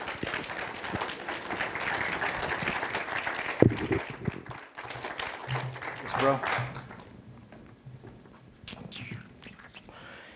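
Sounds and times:
church audience clapping for a speaker: 0:00.0 - 0:07.2
speech: 0:06.2 - 0:06.7.

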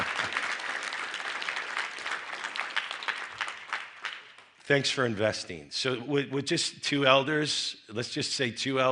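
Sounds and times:
audience applause: 0:00.0 - 0:04.5
speech: 0:04.7 - 0:08.8.

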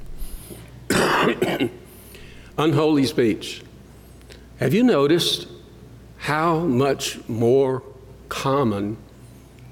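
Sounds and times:
harsh loud coughs: 0:00.9 - 0:01.8
speech: 0:01.2 - 0:01.8, 0:02.6 - 0:03.7, 0:04.6 - 0:05.6, 0:06.2 - 0:09.0.

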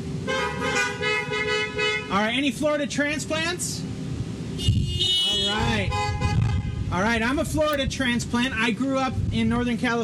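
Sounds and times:
idling engines rumbling: 0:00.0 - 0:10.0
several car horns honking: 0:00.2 - 0:02.2, 0:04.6 - 0:07.2
speech: 0:02.2 - 0:03.9, 0:05.5 - 0:06.2, 0:06.9 - 0:10.0.

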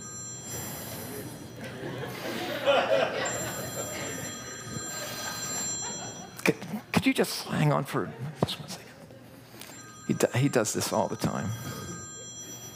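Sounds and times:
telephone ringing: 0:00.0 - 0:06.6, 0:09.5 - 0:12.7
faint laughter: 0:01.6 - 0:06.4
speech: 0:07.0 - 0:08.8, 0:10.1 - 0:11.8.

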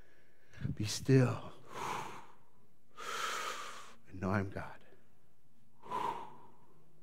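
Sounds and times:
speech: 0:00.7 - 0:01.5, 0:04.2 - 0:04.8
deep breath during a breathing exercise: 0:01.6 - 0:04.0, 0:05.8 - 0:06.9.

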